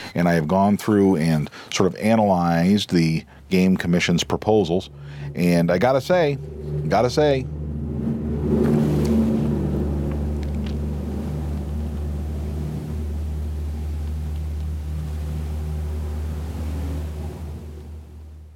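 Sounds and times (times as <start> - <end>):
speech: 0.2 - 7.6
heavy truck passing: 4.6 - 18.5.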